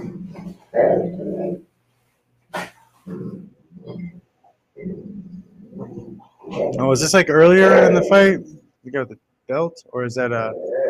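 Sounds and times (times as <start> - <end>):
big dog growling and barking for attention: 0.0 - 1.7, 2.6 - 8.6, 10.5 - 10.8
speech: 0.7 - 1.2, 6.8 - 10.7.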